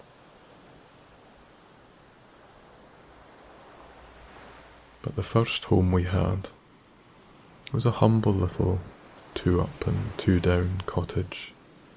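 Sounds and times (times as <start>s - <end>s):
ocean surf: 0.0s - 11.9s
speech: 5.0s - 6.6s, 7.7s - 11.6s.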